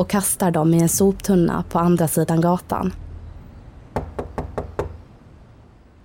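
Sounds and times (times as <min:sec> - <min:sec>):
speech: 0:00.0 - 0:03.0
firm knocks on a front door: 0:03.9 - 0:05.0.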